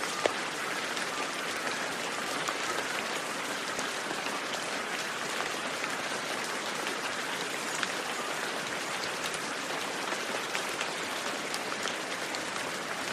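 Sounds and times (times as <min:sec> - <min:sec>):
steady rain with droplets hitting a hard surface: 0:00.0 - 0:13.1.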